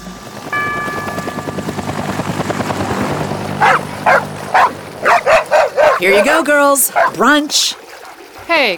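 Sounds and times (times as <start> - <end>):
steady low mechanical drone: 0.0 - 6.4
dogs barking: 3.6 - 8.4
speech: 6.0 - 7.8, 8.5 - 8.7.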